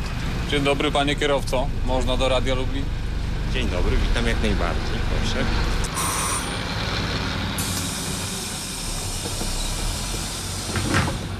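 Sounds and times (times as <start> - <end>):
large diesel bus engine idling: 0.0 - 11.3
speech: 0.5 - 5.9
hiss of released air from bus air brakes: 5.9 - 6.7, 7.6 - 11.3.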